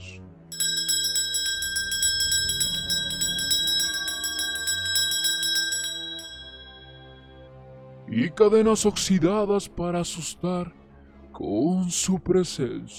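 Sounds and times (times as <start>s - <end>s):
cowbells shaken during a procession: 0.5s - 7.3s
speech: 8.2s - 10.8s, 11.4s - 12.9s.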